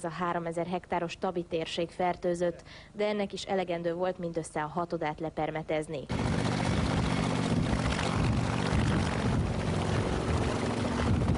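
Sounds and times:
speech: 0.0s - 6.4s
helicopter engine and rotors droning overhead: 6.1s - 11.3s.

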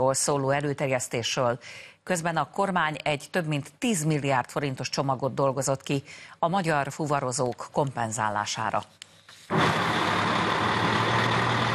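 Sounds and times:
speech: 0.0s - 9.8s
heavy truck engine at a haulage truck yard in Szekszárd Hungary: 9.5s - 11.7s.

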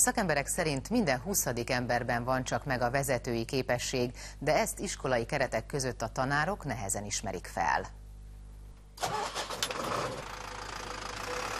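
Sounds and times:
speech: 0.0s - 8.0s, 9.0s - 10.2s
tractor engine cranking and idling at a vocational secondary school: 9.0s - 11.5s.

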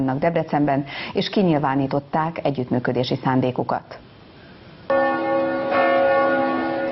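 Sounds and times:
speech: 0.0s - 4.1s
bell of the great church in Debrecen ringing: 4.9s - 6.9s.

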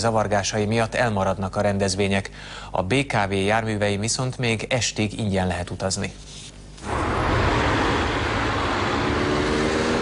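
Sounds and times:
speech: 0.0s - 7.0s
busy city street traffic of passing cars and heavier vehicles: 6.8s - 10.0s.

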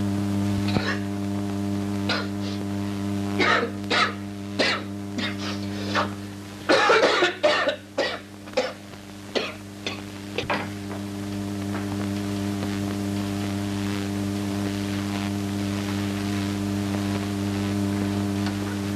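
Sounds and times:
steady low electrical hum: 0.0s - 18.9s
harsh hacking coughs: 0.7s - 1.1s, 2.1s - 2.6s, 3.4s - 10.8s.

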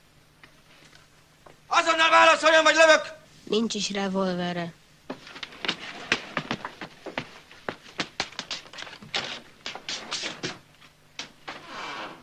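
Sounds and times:
speech: 2.1s - 4.8s
footsteps of someone walking around: 5.1s - 11.6s.

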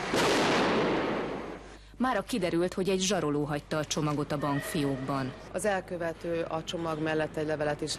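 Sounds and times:
controlled detonation of a suspicious backpack: 0.1s - 1.6s
speech: 2.1s - 7.9s.

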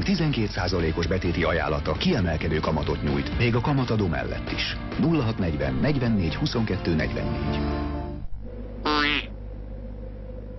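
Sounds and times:
speech: 0.1s - 7.9s
low steady hum: 5.5s - 10.5s
duck quacking: 8.9s - 9.3s.

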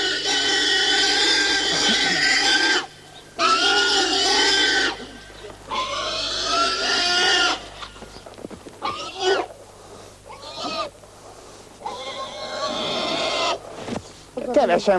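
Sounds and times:
pig squealing at a farm slaughter: 0.0s - 8.0s, 8.8s - 9.5s, 10.3s - 11.0s, 11.8s - 13.6s
speech: 14.7s - 14.9s.

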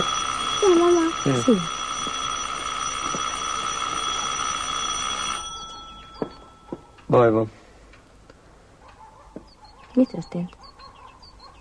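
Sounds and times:
electric bell ringing: 0.0s - 7.4s
speech: 0.6s - 1.8s, 7.1s - 7.6s, 10.0s - 10.6s.

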